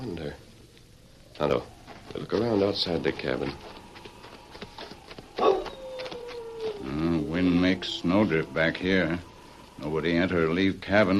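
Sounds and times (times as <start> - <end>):
speech: 0.0 - 0.5, 1.4 - 3.8, 6.8 - 11.1
faint patter and scuffing: 1.8 - 6.9
dog barking and howling: 2.6 - 10.6.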